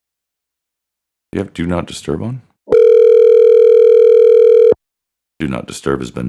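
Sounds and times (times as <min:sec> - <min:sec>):
speech: 0:01.4 - 0:02.5, 0:05.4 - 0:06.2
electronic ringback tone from an outgoing phone call: 0:02.7 - 0:04.8.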